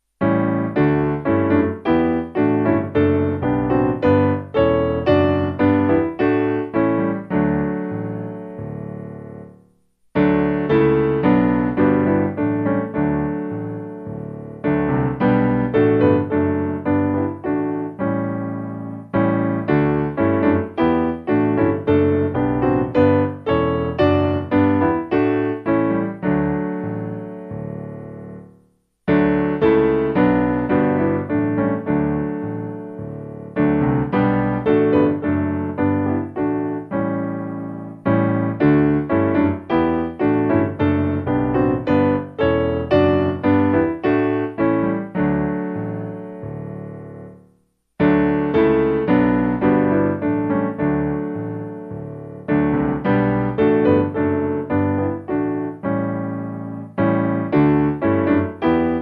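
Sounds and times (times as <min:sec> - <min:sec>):
piano: 0:00.0 - 0:59.0.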